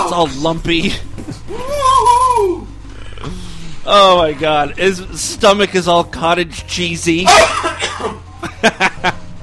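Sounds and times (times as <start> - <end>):
speech: 0.1 - 1.1, 3.2 - 9.1
man coughing: 7.3 - 8.2.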